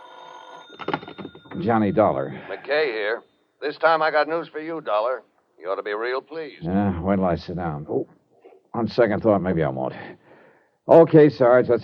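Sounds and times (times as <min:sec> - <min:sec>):
telephone bell ringing in a hotel: 0:00.0 - 0:03.5
speech: 0:01.6 - 0:08.2, 0:08.8 - 0:10.2, 0:10.9 - 0:11.8.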